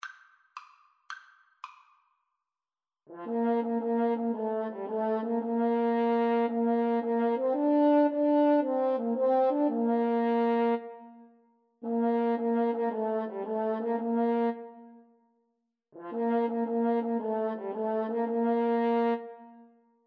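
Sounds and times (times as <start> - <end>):
French horn duet: 3.1 - 10.9, 11.8 - 14.6, 16.0 - 19.2.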